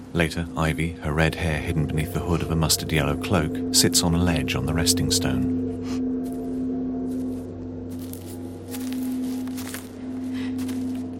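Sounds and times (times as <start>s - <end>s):
steady low hum: 0.0s - 11.1s
speech: 0.2s - 6.0s
footsteps crunching and scuffing: 5.8s - 11.1s.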